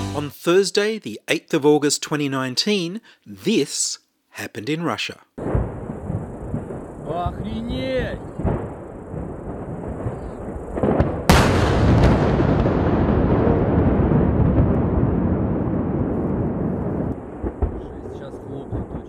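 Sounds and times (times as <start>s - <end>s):
speech: 0.2s - 5.5s
large explosion at a missile test site: 5.4s - 19.0s.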